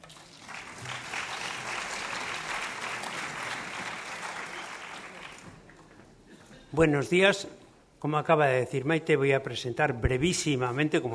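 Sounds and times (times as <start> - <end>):
audience applauding: 0.0 - 5.9
speech: 6.7 - 11.1.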